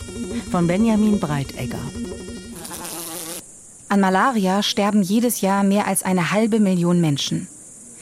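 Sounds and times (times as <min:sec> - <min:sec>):
mosquito whining: 0:00.0 - 0:03.5
speech: 0:00.2 - 0:02.3, 0:03.9 - 0:07.5.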